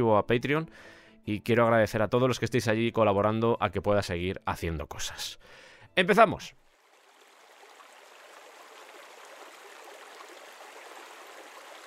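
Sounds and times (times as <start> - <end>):
speech: 0.0 - 6.6
flowing creek water: 6.6 - 11.8.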